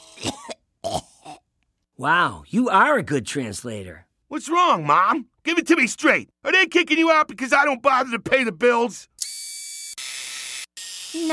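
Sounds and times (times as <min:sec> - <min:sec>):
small coughs: 0:00.0 - 0:01.5
speech: 0:02.0 - 0:09.2, 0:11.1 - 0:11.3.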